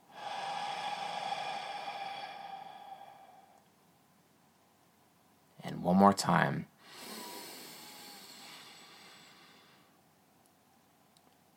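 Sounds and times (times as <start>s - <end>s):
deep breath drawn in through the nose and out through the mouth: 0.0s - 3.7s, 6.8s - 10.0s
speech: 5.8s - 6.7s.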